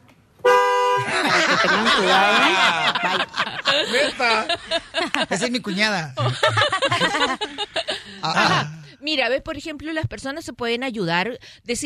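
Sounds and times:
car horn blast: 0.4 - 1.2
people snickering laughter: 1.0 - 8.8
speech: 1.6 - 11.8.

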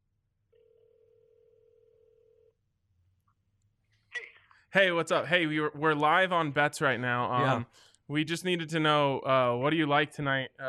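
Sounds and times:
telephone ringing tone from an outgoing phone call: 0.6 - 2.5
speech: 4.7 - 10.6.

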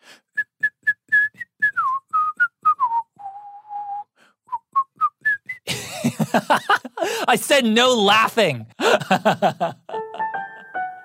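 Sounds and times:
person whistling a short melodic tune: 0.2 - 5.7
laughter: 5.7 - 7.4, 8.8 - 10.7
speech: 6.3 - 9.8.

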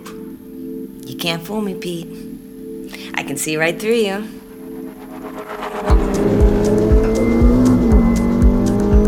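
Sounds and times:
speech: 1.1 - 2.3, 3.2 - 4.4
1949 car engine running with a direct drive torque converter: 4.5 - 9.0.

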